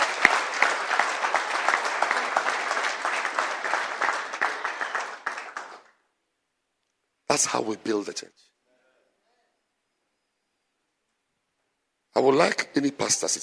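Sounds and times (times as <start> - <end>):
audience applause in a church gathering: 0.0 - 6.0
speech: 7.4 - 8.5, 12.2 - 13.4.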